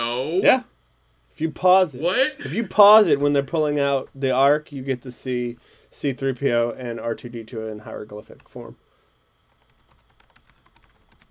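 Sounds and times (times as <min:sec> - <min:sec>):
speech: 0:00.4 - 0:00.7, 0:01.4 - 0:08.8
frantic typing on a computer keyboard: 0:09.5 - 0:11.3.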